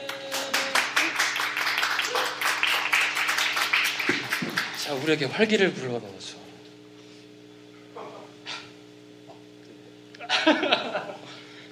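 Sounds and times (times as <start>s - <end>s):
small audience clapping: 0.0s - 5.2s
speech: 4.9s - 6.4s
laughter: 10.2s - 11.3s.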